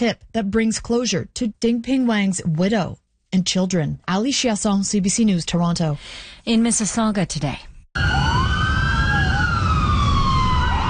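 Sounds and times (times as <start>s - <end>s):
speech: 0.0s - 8.1s
paramedic and police car sirens wailing: 8.0s - 10.8s.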